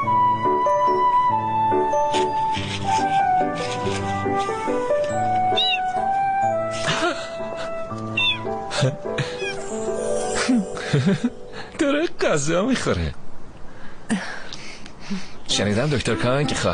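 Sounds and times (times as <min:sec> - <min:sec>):
steady music: 0:00.0 - 0:12.6
cat meowing: 0:05.5 - 0:06.1, 0:08.1 - 0:08.5, 0:09.3 - 0:09.8
speech: 0:10.9 - 0:11.4, 0:12.3 - 0:13.2, 0:15.1 - 0:16.7.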